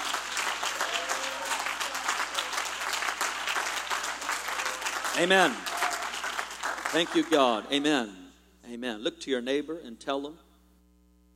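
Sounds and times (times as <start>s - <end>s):
audience clapping hands: 0.0s - 7.7s
speech: 5.2s - 5.7s, 6.9s - 10.4s.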